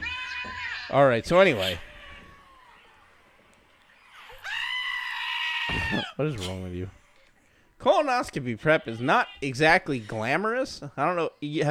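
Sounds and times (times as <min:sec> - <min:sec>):
goat bleating: 0:00.0 - 0:03.1, 0:04.0 - 0:07.2, 0:08.6 - 0:10.4
speech: 0:00.9 - 0:01.9, 0:05.9 - 0:07.0, 0:07.8 - 0:11.7.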